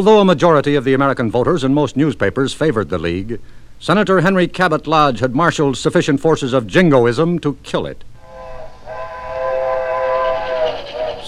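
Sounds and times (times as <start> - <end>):
speech: 0.0 - 8.1
low rumble of rolling rail cars: 8.2 - 11.2
train whistle blast: 8.2 - 11.2.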